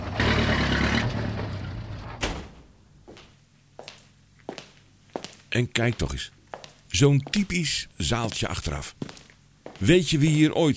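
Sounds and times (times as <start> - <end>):
bus engine rumbling while being parked outside a small hall in Vesoul France: 0.0 - 2.9
speech: 5.5 - 6.4, 7.0 - 9.2, 9.8 - 10.7.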